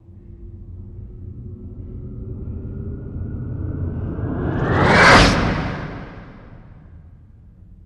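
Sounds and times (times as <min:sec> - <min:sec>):
starship flying by with a whoosh: 0:03.4 - 0:06.8.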